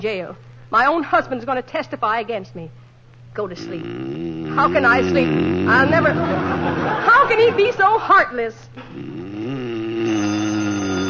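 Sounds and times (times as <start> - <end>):
speech: 0.0 - 10.3
laughter: 5.8 - 8.4
telephone ringing with a loud steady buzzing tone: 10.1 - 11.0.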